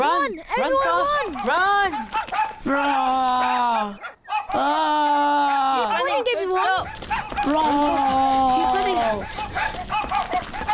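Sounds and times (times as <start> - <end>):
speech: 0.4 - 3.2
dog barking with whining calls: 0.8 - 2.7, 3.4 - 4.7, 5.4 - 8.0, 8.8 - 10.7.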